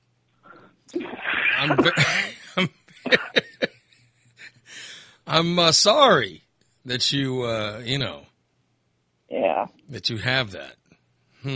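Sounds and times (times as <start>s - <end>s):
speech: 0.9s - 3.2s, 5.3s - 8.3s, 9.9s - 10.8s
throat clearing: 1.6s - 2.3s
person coughing: 1.6s - 2.4s, 3.1s - 3.4s
laughter: 1.6s - 3.8s.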